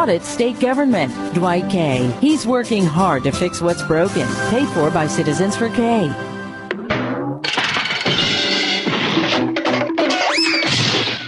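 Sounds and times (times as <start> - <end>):
speech: 0.0 - 6.4
household appliance breaking down with clattering crash: 7.4 - 11.2.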